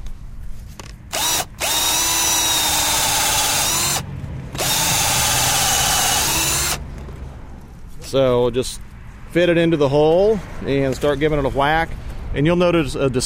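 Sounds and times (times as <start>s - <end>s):
power drill boring a hole: 1.1s - 4.0s, 4.6s - 6.8s
speech: 8.1s - 13.2s.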